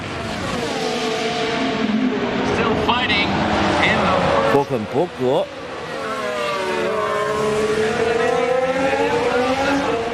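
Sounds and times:
two Mercedes Formula 1 race cars driving past: 0.0s - 10.1s
speech: 4.7s - 5.6s.

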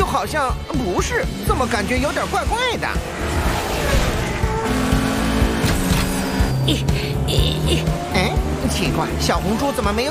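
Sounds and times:
race car engines roaring and revving: 0.0s - 10.1s
speech: 0.1s - 3.5s, 6.6s - 10.1s.

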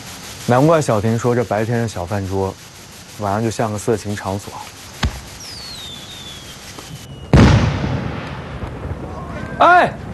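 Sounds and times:
firework whistling as it climbs: 0.0s - 9.4s
speech: 0.5s - 4.8s
firework bursting with a loud boom: 6.9s - 9.2s.

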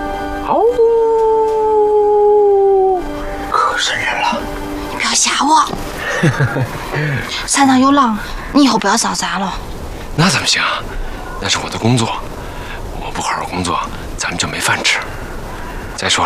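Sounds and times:
wolf howling: 0.4s - 3.8s
voices talking: 0.4s - 16.2s
laughter: 6.0s - 7.2s.

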